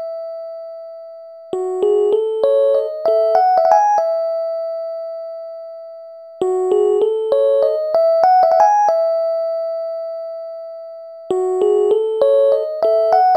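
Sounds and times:
electric piano: 1.5s - 4.9s, 6.4s - 10.0s, 11.3s - 13.3s.

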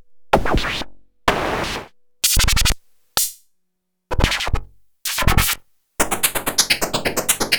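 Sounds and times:
high hi-hats: 0.3s - 3.4s, 5.1s - 7.4s.

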